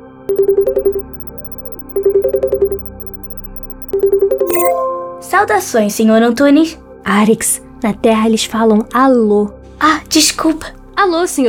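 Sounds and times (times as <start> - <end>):
speech: 0.3 - 1.3, 2.0 - 3.0, 3.9 - 11.4
short higher warbling electronic tone: 0.3 - 4.8
phone ringing while a call is being placed: 0.3 - 5.1.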